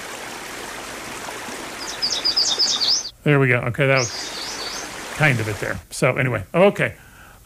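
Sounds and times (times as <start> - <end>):
faint steady hiss: 0.0 - 7.4
yellow warbler song: 1.7 - 5.7
speech: 3.2 - 4.3, 5.2 - 7.0.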